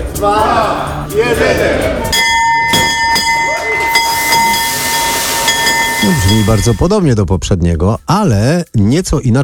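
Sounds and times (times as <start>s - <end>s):
speech: 0.2s - 2.1s, 6.0s - 9.4s
stock exchange opening bell ringing: 2.1s - 6.9s.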